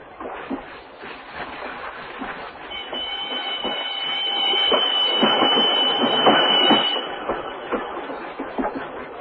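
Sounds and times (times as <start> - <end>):
passenger train rumbling on rails: 0.0 - 9.2
rhythmic clacking of train on rails: 0.0 - 9.2
high metallic train wheel squeal: 2.7 - 7.5.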